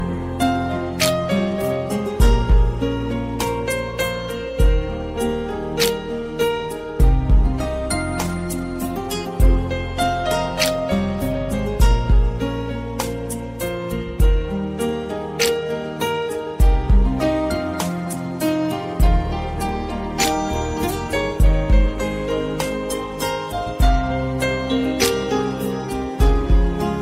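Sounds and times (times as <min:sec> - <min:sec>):
romantic instrumental song ringtone: 0:00.0 - 0:27.0.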